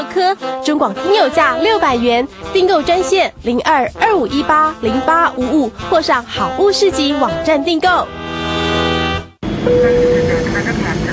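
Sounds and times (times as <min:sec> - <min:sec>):
speech: 0:00.2 - 0:08.2, 0:09.7 - 0:10.8
airplane engine roar with a faint whining tone: 0:00.9 - 0:11.1
short sustained tone: 0:07.1 - 0:11.1.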